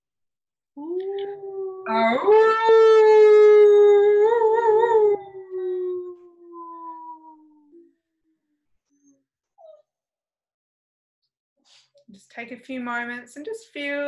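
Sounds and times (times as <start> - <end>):
person imitating a wolf howl: 0.8 - 7.9
speech: 1.9 - 2.9, 12.4 - 14.0.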